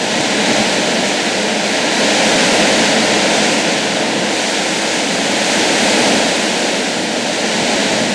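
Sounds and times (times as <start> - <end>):
rain: 0.0 - 8.1
wind: 0.0 - 8.1.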